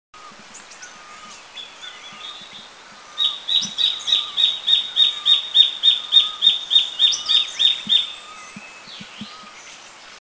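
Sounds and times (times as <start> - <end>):
cutia bird calling in Eaglenest India: 0.2 - 10.1.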